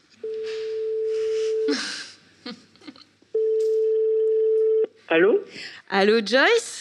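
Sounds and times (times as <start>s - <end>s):
telephone ringing tone from an outgoing call: 0.2s - 1.7s, 3.4s - 4.9s
speech: 5.2s - 6.7s.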